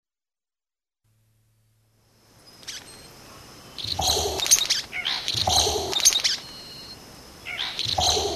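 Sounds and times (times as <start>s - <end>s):
Vogelkop bowerbird making raspy broken calls: 2.5s - 8.3s.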